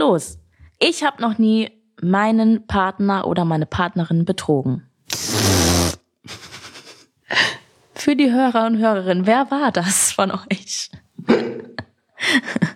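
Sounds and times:
speech: 0.1 - 6.4, 7.3 - 12.7
buzzy fart imitation made with the lips: 5.1 - 6.2.

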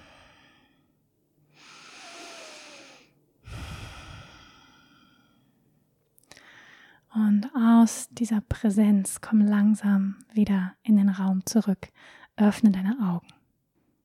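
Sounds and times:
deep breathing in and out during a mindfulness exercise: 0.0 - 5.6, 6.3 - 7.1
speech: 7.2 - 13.4.

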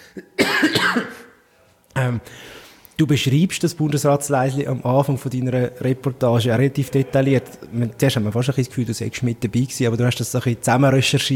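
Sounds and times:
person coughing: 0.0 - 1.4
speech: 0.2 - 1.1, 2.0 - 11.3.

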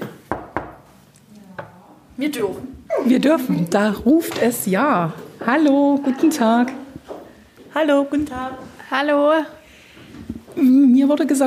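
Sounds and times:
sharp knocks on a door: 0.0 - 0.8
speech: 2.2 - 6.8, 7.7 - 9.6, 10.6 - 11.4.

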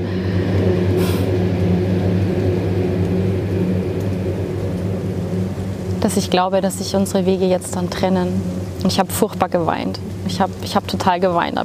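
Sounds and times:
car engine rumble as car drives past: 0.0 - 11.6
road noise: 0.0 - 11.6
brief hiss: 1.0 - 1.3
speech: 6.0 - 11.6.

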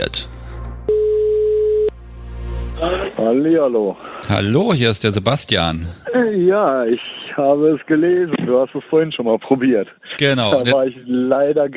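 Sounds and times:
speech: 0.0 - 0.4, 2.8 - 11.7
telephone ringback tone beep while placing a call: 0.9 - 1.9.

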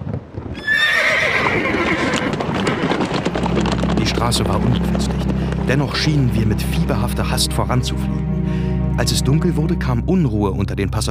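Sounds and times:
clattering hoofbeats of horses pulling a coach: 0.0 - 7.3
horse whinnying as a horse-drawn coach sets off: 0.5 - 3.9
speech: 4.2 - 11.1.

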